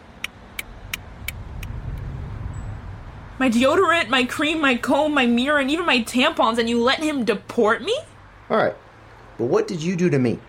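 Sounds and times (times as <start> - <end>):
car engine rumble slowing to a stop: 0.0 - 7.7
speech: 3.4 - 8.8, 9.4 - 10.4.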